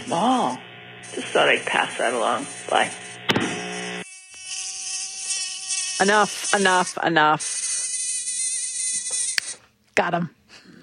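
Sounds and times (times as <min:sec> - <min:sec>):
tiny mosquitoes buzzing: 0:00.0 - 0:09.6
speech: 0:00.1 - 0:03.4, 0:06.0 - 0:07.6, 0:10.0 - 0:10.4.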